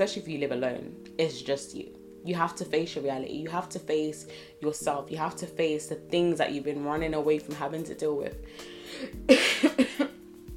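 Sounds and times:
speech: 0.0s - 10.1s
person coughing harshly and raspily: 9.0s - 10.2s.

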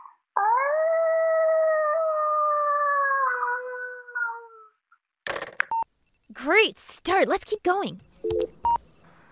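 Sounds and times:
person imitating a wolf howl: 0.4s - 4.8s
speech: 6.4s - 8.8s.

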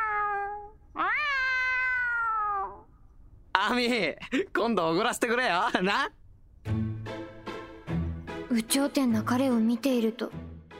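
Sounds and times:
black cat meowing: 0.0s - 2.9s
speech: 3.7s - 6.8s, 8.6s - 10.4s.

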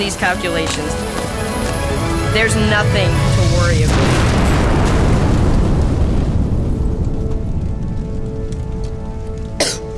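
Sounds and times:
speech: 0.0s - 1.4s, 2.3s - 4.2s
explosion from a lit fuse blasting a hole in the ground: 2.5s - 9.6s.

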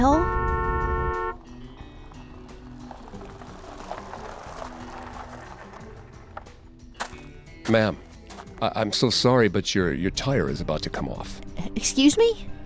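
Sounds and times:
car horn blaring behind a car: 0.0s - 1.5s
road traffic rumble: 0.0s - 7.6s
speech: 7.7s - 12.5s.

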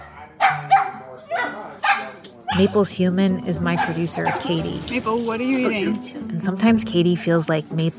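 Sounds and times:
dog barking: 0.0s - 2.8s, 3.6s - 4.8s
speech: 2.0s - 7.9s.

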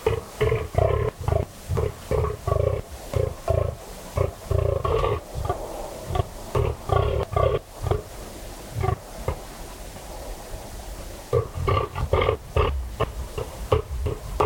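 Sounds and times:
fallow buck rutting groans on a cold still autumn night in West Dorset, England: 0.0s - 9.5s, 11.3s - 14.4s.

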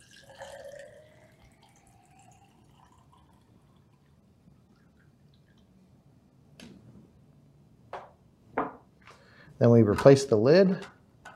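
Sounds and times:
water poured into a sport bottle for making hydrogen water: 0.0s - 4.1s
speech: 9.6s - 11.0s.

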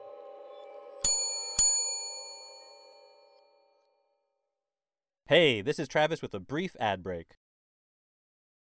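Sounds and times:
hotel front desk bell tapped by hand: 1.0s - 3.5s
speech: 5.3s - 7.4s.

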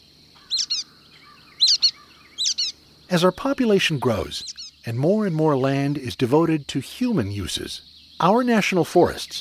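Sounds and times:
faint steady insect-like hum: 0.0s - 9.3s
brown-headed nuthatches foraging call: 0.4s - 4.9s
speech: 3.1s - 9.3s.

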